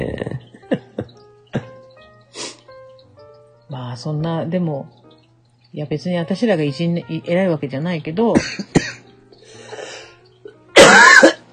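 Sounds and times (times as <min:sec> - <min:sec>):
person coughing during a recording session: 0:00.7 - 0:01.8, 0:08.4 - 0:09.0, 0:10.8 - 0:11.4
speech: 0:03.9 - 0:05.0, 0:05.7 - 0:08.8.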